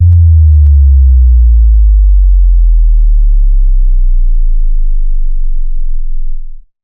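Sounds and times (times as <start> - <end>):
sub bass drop: 0.0 - 6.7.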